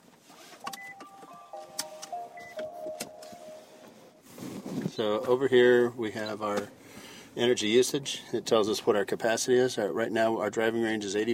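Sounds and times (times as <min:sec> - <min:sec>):
small electric car electronic chime-like tones: 0:00.7 - 0:04.7
speech: 0:05.0 - 0:06.8, 0:07.4 - 0:11.3.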